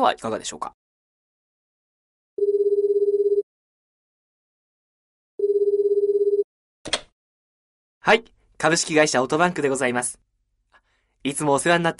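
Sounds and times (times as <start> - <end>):
speech: 0.0 - 0.8, 8.0 - 10.3, 11.2 - 11.9
telephone ringing with a trilling tone: 2.4 - 3.4, 5.4 - 6.5.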